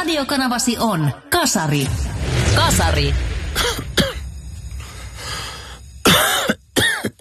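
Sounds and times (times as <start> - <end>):
speech: 0.2 - 3.3
person coughing: 3.5 - 4.3, 6.0 - 7.1.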